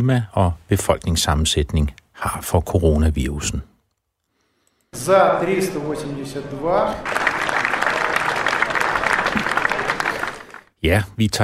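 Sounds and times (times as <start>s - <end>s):
speech: 0.0s - 3.7s, 4.9s - 7.2s, 10.8s - 11.4s
members of the Russian parliament clapping after a vote on constitutional amendments: 6.9s - 10.7s.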